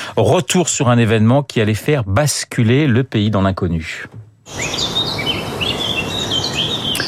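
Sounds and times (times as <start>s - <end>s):
speech: 0.2s - 5.3s
birds singing and chirping in quiet city streets: 4.5s - 7.0s.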